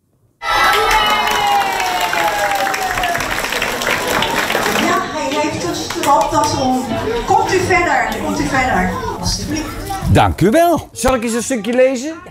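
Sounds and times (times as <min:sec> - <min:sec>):
excited children shouting: 0:00.4 - 0:03.2
crowd of children applauding and cheering: 0:00.4 - 0:05.2
speech: 0:06.1 - 0:12.2.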